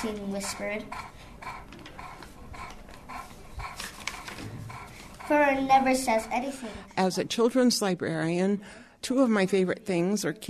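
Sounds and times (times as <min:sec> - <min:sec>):
speech: 0:00.0 - 0:01.6, 0:05.3 - 0:10.4
library dog panting: 0:00.0 - 0:07.2.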